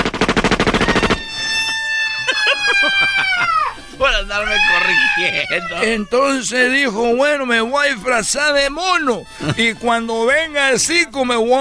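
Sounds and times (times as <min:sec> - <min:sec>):
firing-squad gunfire: 0:00.0 - 0:01.6
laughter: 0:02.2 - 0:03.8, 0:09.4 - 0:09.8
speech: 0:04.0 - 0:11.5.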